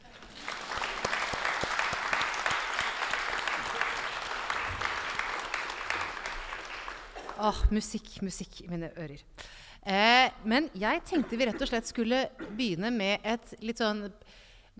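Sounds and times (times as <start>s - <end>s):
audience applause: 0.0s - 7.4s
speech: 7.4s - 14.5s.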